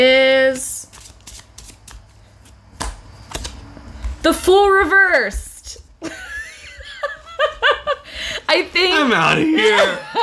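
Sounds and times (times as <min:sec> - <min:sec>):
deck of cards shuffled: 0:00.7 - 0:04.1
speech: 0:04.2 - 0:05.5, 0:08.5 - 0:10.2
laughter: 0:06.0 - 0:08.4, 0:09.1 - 0:10.2.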